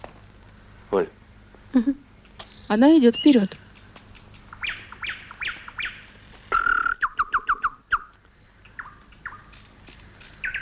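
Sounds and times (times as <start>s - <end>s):
speech: 0.9s - 2.1s, 2.7s - 3.6s
nightingale singing: 1.5s - 10.6s.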